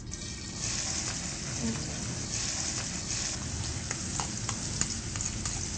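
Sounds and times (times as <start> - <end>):
onion and other vegetables sautéing in heating oil in a pan: 0.2 - 5.7
small clicks and taps from stirring vegetables in a pan: 3.8 - 5.7.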